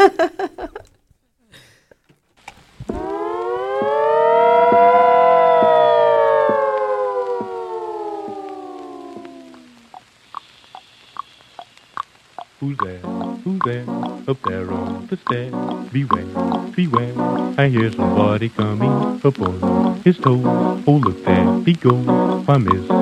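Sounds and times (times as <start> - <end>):
speech: 0.0 - 0.6, 12.7 - 23.0
laughter: 0.0 - 2.0
eerie siren-like wail in a spooky song intro: 2.8 - 10.0
sharp evenly spaced taps: 3.0 - 22.9.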